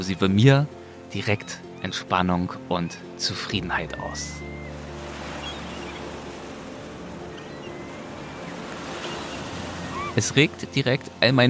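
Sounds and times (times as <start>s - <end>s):
speech: 0.0s - 4.5s, 10.2s - 11.4s
breeze: 0.7s - 11.3s
ocean surf washing onto a shore: 2.9s - 11.4s.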